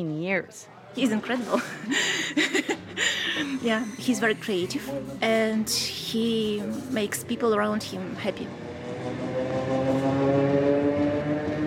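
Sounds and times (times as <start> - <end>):
speech: 0.0 - 8.8
laughter: 1.0 - 4.6
passenger train running: 3.2 - 11.6.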